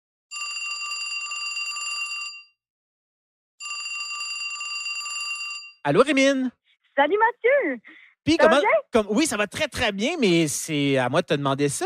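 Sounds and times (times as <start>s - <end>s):
telephone ringing as a call is placed: 0.3s - 2.6s, 3.6s - 5.8s
speech: 5.8s - 11.8s.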